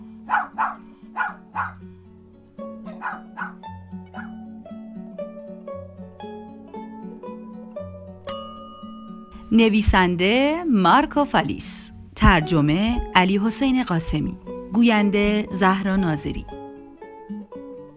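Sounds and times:
steady musical backing: 0.0s - 17.9s
dog barking: 0.2s - 1.8s, 2.8s - 4.4s
speech: 0.3s - 0.7s, 9.5s - 16.6s
bright chime: 8.3s - 9.9s.

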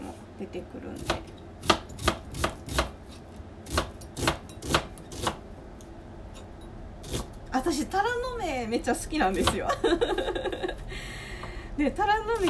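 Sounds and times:
speech: 0.4s - 1.8s, 7.6s - 10.6s, 11.8s - 12.4s
knife chopping vegetables on a cutting board: 1.0s - 5.4s
laughter: 9.7s - 10.8s.

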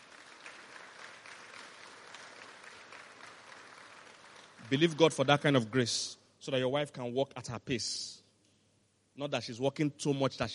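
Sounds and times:
sizable audience clapping: 0.0s - 5.7s
speech: 4.7s - 8.2s, 9.2s - 10.5s.

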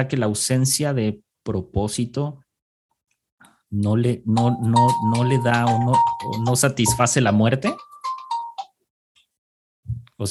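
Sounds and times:
speech: 0.0s - 2.4s, 3.7s - 7.9s
mobile phone ringtone playing a brief electronic melody: 4.4s - 7.2s.

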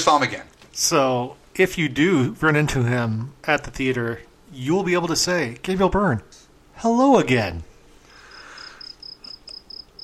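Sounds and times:
speech: 0.0s - 7.7s
soft hiss: 0.0s - 10.0s
cricket chirping: 8.1s - 10.0s.

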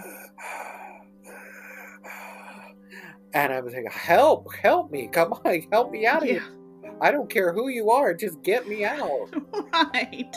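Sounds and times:
voice imitating an older man's heavy raspy breathing: 0.0s - 3.5s
speech: 3.4s - 10.3s
laughter: 8.6s - 10.3s.

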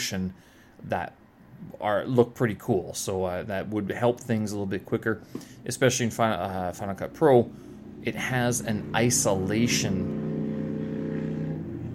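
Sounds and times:
speech: 0.1s - 10.3s
loud car engine droning as it passes by: 7.4s - 11.9s.

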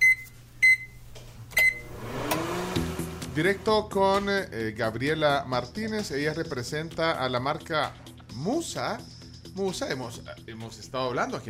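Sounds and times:
short electronic beeps from a microwave oven: 0.0s - 2.0s
speech: 3.4s - 11.4s.

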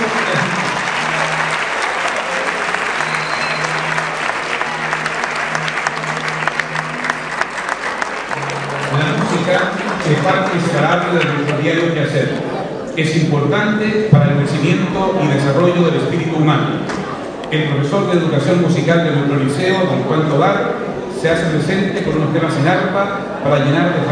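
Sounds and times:
audience clapping at a school ceremony: 0.0s - 12.3s
low hum: 2.9s - 11.1s
speech: 10.3s - 12.4s, 13.0s - 24.0s.

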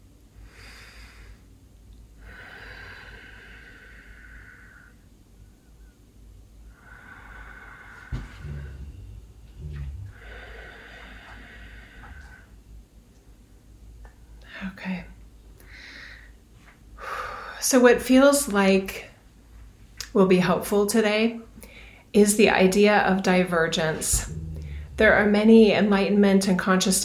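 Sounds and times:
slow deep breathing at the start of a guided mind-body session: 2.2s - 5.0s, 6.7s - 12.6s, 23.6s - 26.0s
speech: 17.7s - 19.1s, 20.2s - 21.5s, 22.1s - 24.4s, 25.0s - 27.0s.

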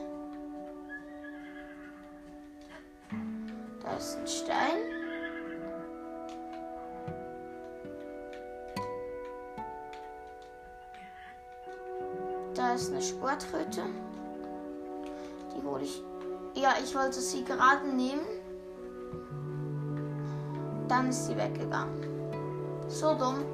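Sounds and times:
faint horse hooves clip-clopping: 0.0s - 23.5s
steady tonal backdrop: 0.0s - 23.5s
horse whinnying: 0.1s - 3.0s, 4.7s - 6.2s, 11.0s - 11.5s
speech: 4.0s - 5.0s, 12.8s - 14.2s, 15.7s - 18.4s, 20.9s - 22.1s, 22.9s - 23.5s.

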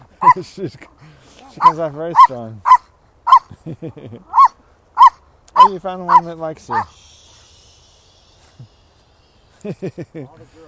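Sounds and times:
speech: 0.3s - 2.7s, 3.6s - 4.4s, 5.6s - 7.1s, 9.6s - 10.6s
female puppy yappy barking during a dog walk: 1.6s - 3.5s, 4.3s - 6.9s
laughter: 3.5s - 4.4s, 9.5s - 10.6s.

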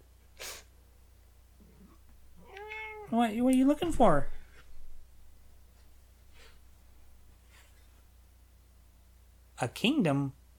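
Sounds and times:
sneeze-like burst: 0.4s - 0.7s
cat meowing: 2.4s - 3.2s
speech: 3.1s - 4.4s, 9.6s - 10.4s.

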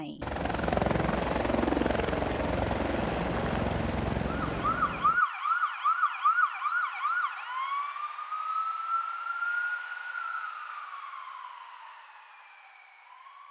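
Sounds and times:
air ambulance helicopter rotors thumping: 0.0s - 5.2s
emergency siren wailing: 0.4s - 13.5s.

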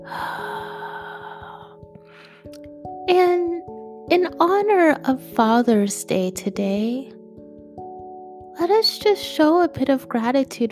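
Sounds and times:
deep breath in and out: 0.0s - 2.5s
speech: 3.1s - 3.5s, 4.2s - 7.2s, 8.6s - 10.6s.

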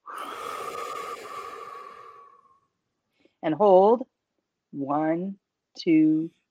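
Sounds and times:
long breathy exhale during a guided breathing exercise: 0.0s - 2.7s
speech: 3.4s - 4.1s, 4.7s - 6.4s.

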